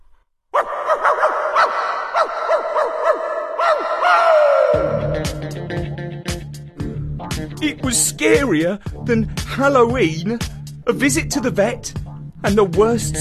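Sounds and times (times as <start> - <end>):
dog yelping and whining: 0.6 - 4.8
speech: 7.6 - 13.1.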